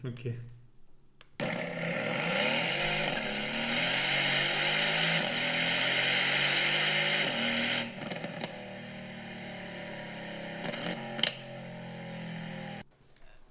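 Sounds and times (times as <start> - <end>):
speech: 0.0 - 0.6
stationary sports car engine revving: 1.4 - 12.8.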